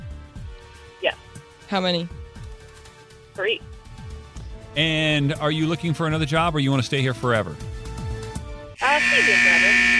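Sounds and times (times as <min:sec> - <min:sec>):
speech: 0:01.0 - 0:02.2, 0:03.4 - 0:03.7, 0:04.7 - 0:07.7
loud harsh buzzer: 0:08.8 - 0:09.9.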